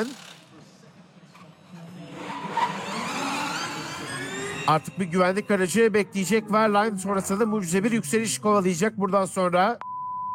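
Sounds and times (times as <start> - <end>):
speech: 0.0 - 0.2, 4.7 - 9.9
racing car entering pit lane on a punctured right rear tyre: 1.4 - 9.6.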